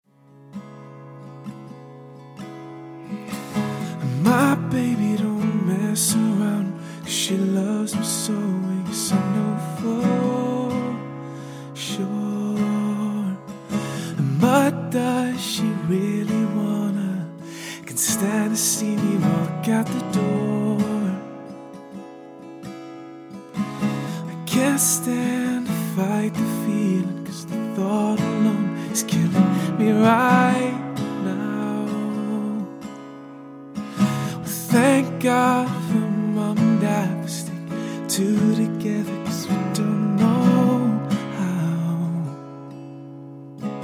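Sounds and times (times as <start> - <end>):
guitar: 0.0 - 43.8
person singing: 3.9 - 11.2, 11.8 - 13.5, 14.1 - 21.4, 24.2 - 32.7, 34.1 - 42.4.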